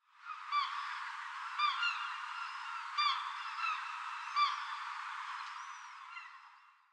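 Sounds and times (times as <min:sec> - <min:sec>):
ocean: 0:00.1 - 0:06.9.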